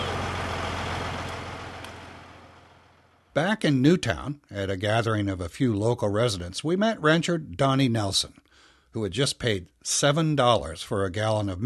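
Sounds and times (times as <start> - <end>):
heavy truck engine roaring past: 0.0 - 3.3
speech: 3.4 - 11.6.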